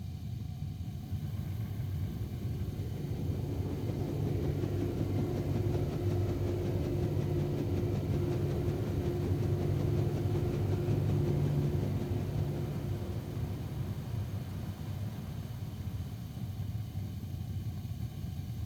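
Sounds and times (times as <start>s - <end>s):
basement heater running: 0.8s - 18.6s.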